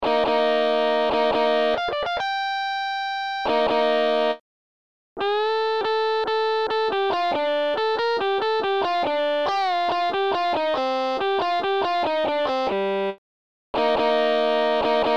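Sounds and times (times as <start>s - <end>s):
guitar solo: 0.0s - 4.4s, 5.2s - 13.1s, 13.8s - 15.1s.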